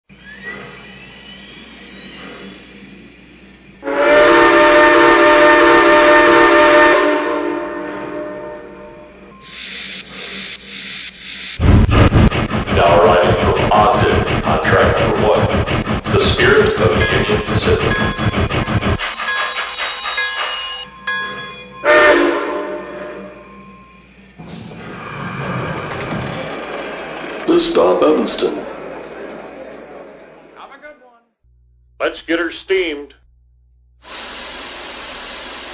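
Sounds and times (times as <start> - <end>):
484 FEF train: 0.1 - 31.2, 34.0 - 35.7.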